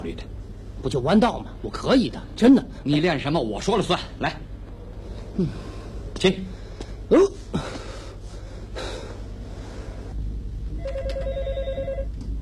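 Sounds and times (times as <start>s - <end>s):
speech: 0.0s - 4.5s, 5.4s - 7.7s
sharp gasping breaths: 5.1s - 10.2s
telephone ringing: 10.8s - 12.2s.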